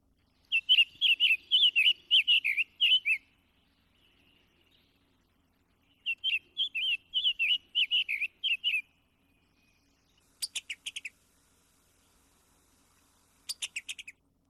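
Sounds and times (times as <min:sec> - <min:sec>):
summer tanager singing burry warbled phrases: 0:00.2 - 0:11.3, 0:13.4 - 0:14.3.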